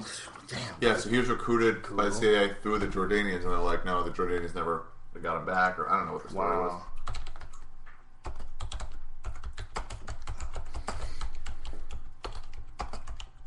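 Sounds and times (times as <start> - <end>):
speech: 0.8 - 6.9
rapid typing on a computer keyboard: 7.0 - 13.4.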